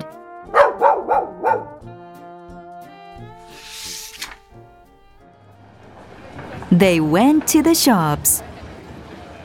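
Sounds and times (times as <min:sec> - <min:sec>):
big dog barking: 0:00.5 - 0:01.8
burst of hiss: 0:03.5 - 0:04.2
speech: 0:06.7 - 0:08.5.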